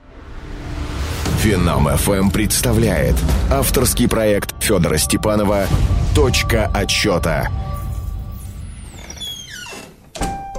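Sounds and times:
low rumbling background: 0:00.3 - 0:09.7
speech: 0:01.4 - 0:07.7
house door hinges squealing: 0:07.6 - 0:10.5.

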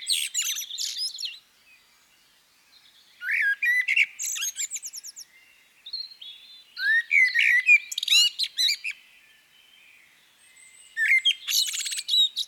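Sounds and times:
common blackbird Turdus merula song: 0:00.0 - 0:12.4.

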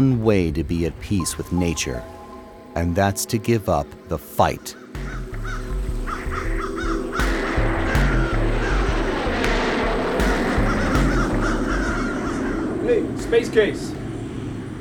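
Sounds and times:
speech: 0:00.0 - 0:02.2, 0:02.8 - 0:05.6, 0:12.9 - 0:14.0
crows cawing on a runway while eating a dead seagull: 0:04.5 - 0:13.6
steady loud low rumble: 0:05.0 - 0:12.8.

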